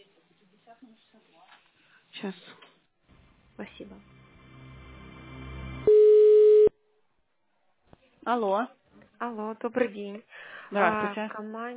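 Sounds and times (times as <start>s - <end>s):
speech: 0.8s - 2.6s, 3.6s - 4.2s, 8.2s - 11.7s
telephone busy signal: 5.9s - 6.7s.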